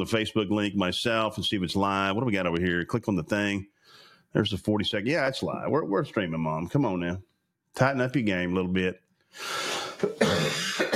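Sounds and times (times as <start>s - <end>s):
speech: 0.0s - 10.9s
person coughing and clearing their throat: 9.9s - 10.9s.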